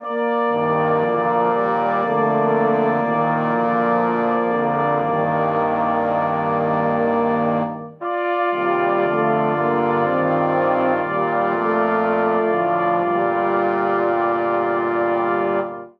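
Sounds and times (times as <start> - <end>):
brass quartet phrase in G minor: 0.0 - 15.9.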